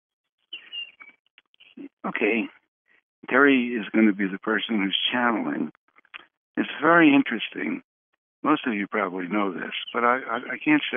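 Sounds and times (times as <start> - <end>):
bird chirping outside a window: 0.4 - 1.9, 9.6 - 10.6
speech: 2.0 - 2.6, 3.2 - 5.8, 6.6 - 10.9.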